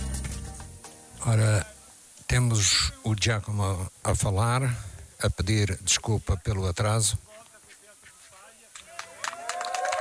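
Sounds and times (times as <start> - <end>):
speech: 1.2 - 1.7, 2.3 - 7.3
crowd applause with scattered hand claps: 8.8 - 9.9.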